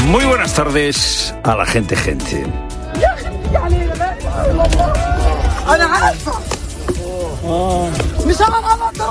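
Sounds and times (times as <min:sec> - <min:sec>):
speech: 0:00.1 - 0:03.9, 0:05.7 - 0:06.5, 0:07.5 - 0:09.1
panicked crowd shouting and running: 0:02.9 - 0:06.3.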